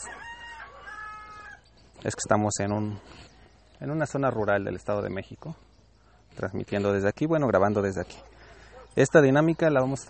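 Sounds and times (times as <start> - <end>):
rooster crowing in a rural yard: 0.0 - 1.7
faint outdoor noise in a rural yard: 0.0 - 10.0
speech: 2.0 - 5.7, 6.4 - 8.3, 9.0 - 10.0.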